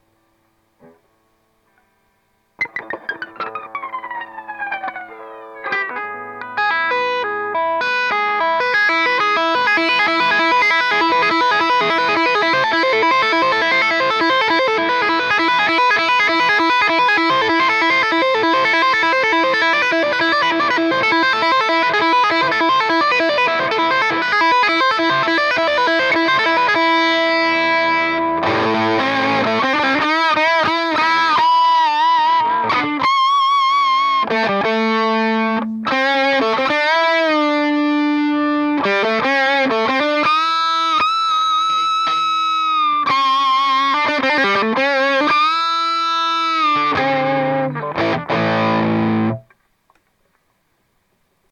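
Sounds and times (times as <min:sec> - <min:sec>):
electric guitar lead through mosfet booster: 0:00.0 - 0:49.6.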